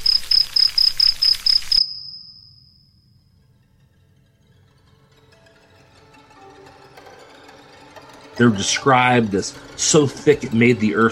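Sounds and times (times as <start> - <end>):
busy insect hiss: 0.0 - 3.3
dense chorus of crickets chirping: 0.0 - 3.6
speech: 8.4 - 11.1.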